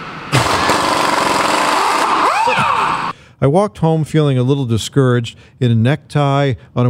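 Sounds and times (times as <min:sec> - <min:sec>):
pneumatic power drill whirring at an auto mechanic shop: 0:00.3 - 0:03.1
speech: 0:03.4 - 0:06.8.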